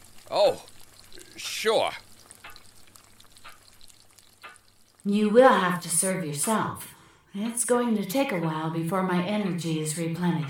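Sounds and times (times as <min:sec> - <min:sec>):
bacon frying on a stove: 0:00.0 - 0:06.7
crackling pops of frying bacon: 0:00.0 - 0:06.9
speech: 0:00.3 - 0:02.1, 0:05.0 - 0:10.4.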